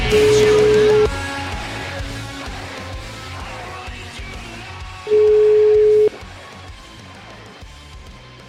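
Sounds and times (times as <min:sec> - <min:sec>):
telephone tone as a call is placed: 0:00.1 - 0:01.1, 0:05.1 - 0:06.2.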